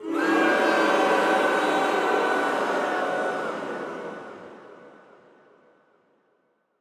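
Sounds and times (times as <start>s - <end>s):
crowd booing: 0.0s - 4.5s.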